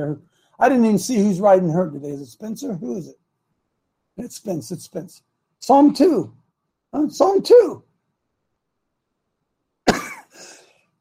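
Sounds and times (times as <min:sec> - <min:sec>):
speech: 0:00.0 - 0:03.2, 0:04.2 - 0:07.9
harsh cough: 0:09.8 - 0:10.9
rough throat-clearing rasp: 0:09.9 - 0:10.4
faint catch of breath: 0:10.3 - 0:10.9.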